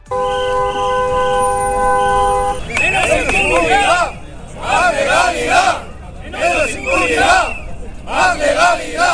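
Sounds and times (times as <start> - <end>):
taxi drivers' car horns blaring in protest: 0.0 - 7.5
crowd of protesting taxi drivers chanting slogans in a Basque city street: 2.6 - 9.1.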